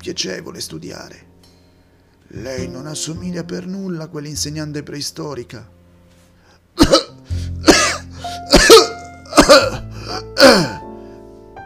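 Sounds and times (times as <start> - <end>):
speech: 0.0 - 1.3, 2.3 - 5.8, 9.5 - 10.8
man coughing up blood: 6.8 - 10.9.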